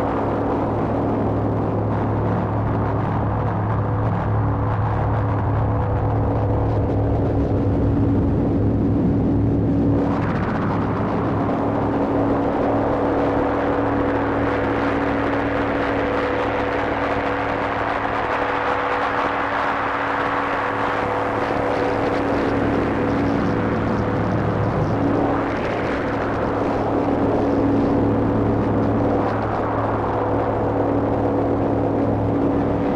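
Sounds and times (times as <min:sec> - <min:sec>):
dense synthesizer drone with modulated sub-oscillator tones through VCAs: 0:00.0 - 0:32.9.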